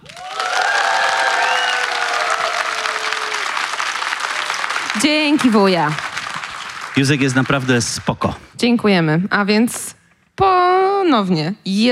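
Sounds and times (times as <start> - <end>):
people whooping and cheering: 0.0 - 7.5
large audience applause: 0.0 - 8.4
speech: 5.0 - 6.0, 7.0 - 11.9.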